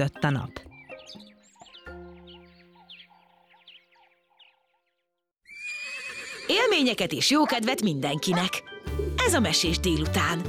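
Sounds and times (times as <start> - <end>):
speech: 0.0 - 1.2, 6.5 - 8.6, 9.3 - 10.4
horse neighing: 5.4 - 6.9.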